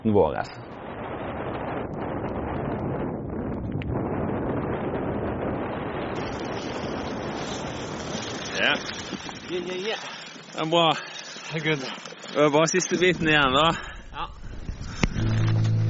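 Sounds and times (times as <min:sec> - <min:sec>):
speech: 0:00.0 - 0:00.8, 0:08.6 - 0:14.3
strong wind roaring across the microphone: 0:00.0 - 0:15.8
faint water: 0:06.2 - 0:15.4.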